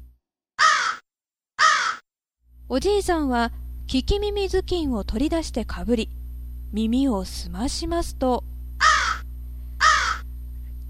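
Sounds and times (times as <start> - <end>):
crows cawing: 0.6 - 1.0, 1.6 - 2.0, 8.8 - 10.3
speech: 2.7 - 8.5.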